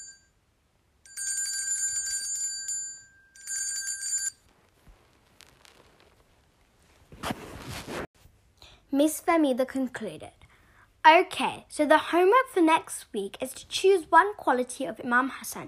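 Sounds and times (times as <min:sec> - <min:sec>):
bright electric school bell ringing for home time: 0:00.0 - 0:00.3, 0:01.1 - 0:04.4
rustling noise: 0:04.2 - 0:08.4
speech: 0:08.9 - 0:10.4, 0:11.1 - 0:15.6.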